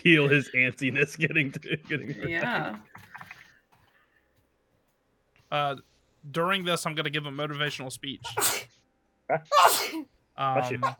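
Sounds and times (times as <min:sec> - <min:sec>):
speech: 0:00.0 - 0:03.1, 0:05.5 - 0:10.9
sneeze: 0:08.3 - 0:08.7, 0:09.5 - 0:10.1.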